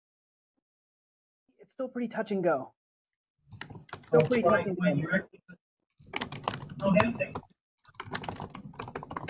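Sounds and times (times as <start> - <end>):
speech: 1.6 - 2.8, 4.1 - 5.6, 6.8 - 7.5
rapid computer keyboard typing: 3.5 - 4.7, 6.0 - 9.2.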